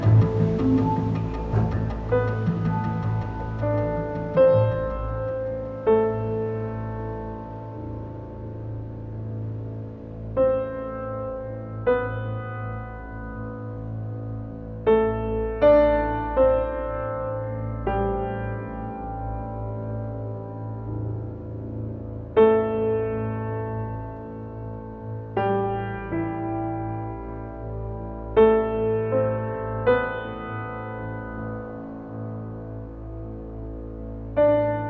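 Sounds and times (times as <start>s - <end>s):
music outdoors in a desert: 0.0s - 34.8s.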